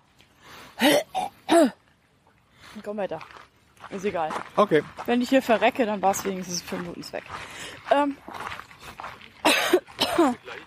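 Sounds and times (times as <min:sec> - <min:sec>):
person coughing after hard candy goes down the throat: 0:00.8 - 0:01.8, 0:09.4 - 0:10.4
speech: 0:00.8 - 0:01.8, 0:02.8 - 0:08.5, 0:10.2 - 0:10.6.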